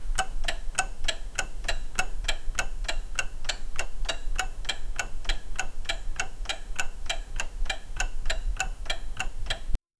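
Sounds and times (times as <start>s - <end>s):
clock ticking: 0.0s - 9.8s.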